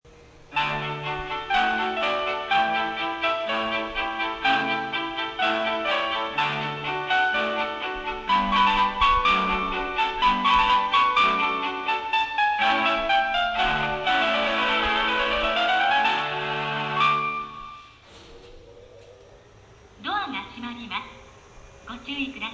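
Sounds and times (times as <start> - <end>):
melody in Tsuchiura: 0.5 - 18.0.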